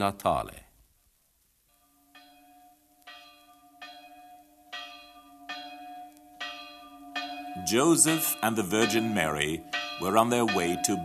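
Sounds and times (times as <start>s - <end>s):
speech: 0.0s - 0.6s, 7.6s - 11.0s
carillon of church bells ringing: 1.8s - 11.0s.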